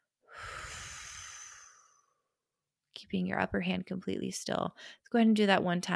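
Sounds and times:
slow breathing, inhaling through nose and exhaling through pursed lips: 0:00.3 - 0:02.2
speech: 0:03.0 - 0:05.9.

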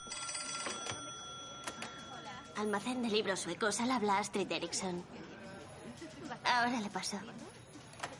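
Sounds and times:
telephone ringing with a bright bell tone: 0:00.0 - 0:03.2
speech: 0:02.6 - 0:05.2, 0:06.3 - 0:07.6.

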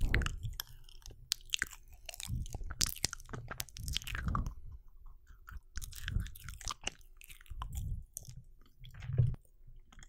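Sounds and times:
wet chewing and biting with crunchy clicks: 0:00.0 - 0:10.0.

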